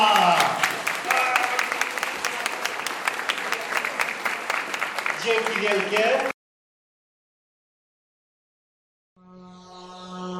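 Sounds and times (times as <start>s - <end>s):
audience clapping at the end of a talk: 0.0s - 6.4s
speech: 5.3s - 6.3s.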